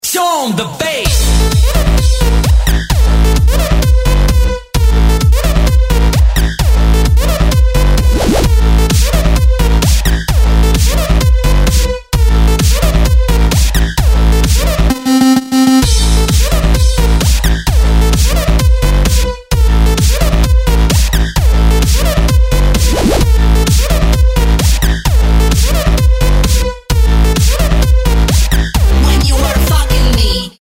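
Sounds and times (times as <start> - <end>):
bass synth: 1.1 - 30.4.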